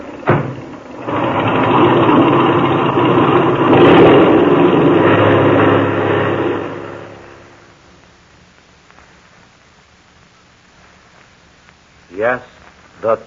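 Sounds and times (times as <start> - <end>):
airplane engine revving with brakes set before takeoff: 0.0 - 7.9.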